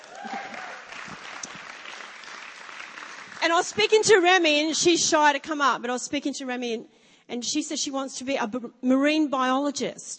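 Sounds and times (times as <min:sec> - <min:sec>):
crowd clapping: 0:00.0 - 0:04.0
speech: 0:03.4 - 0:10.1.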